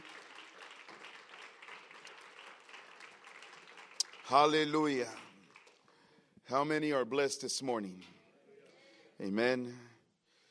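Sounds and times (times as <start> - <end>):
crowd clapping steadily: 0.0 - 6.2
speech: 4.3 - 5.2, 6.5 - 8.2, 9.2 - 9.9.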